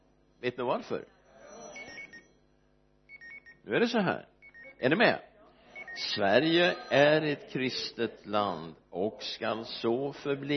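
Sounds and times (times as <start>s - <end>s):
speech: 0.4s - 1.2s, 3.6s - 5.3s, 6.0s - 10.5s
mobile phone ringing with bright electronic ringtone: 1.0s - 2.5s, 5.7s - 7.8s.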